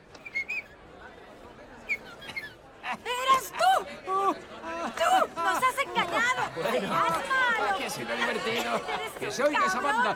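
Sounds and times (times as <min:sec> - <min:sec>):
faint murmur: 0:00.0 - 0:10.1
person whistling bird-like chirps imitating a songbird: 0:00.2 - 0:00.7
speech: 0:08.8 - 0:10.1.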